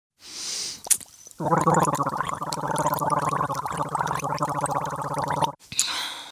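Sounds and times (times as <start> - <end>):
person rinsing mouth with water in mouth and throat: 0.8 - 5.6.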